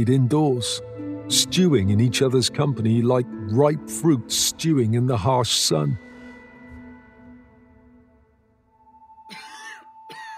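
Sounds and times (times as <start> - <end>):
speech: 0.0 - 6.1
dry hacking cough: 9.3 - 10.3.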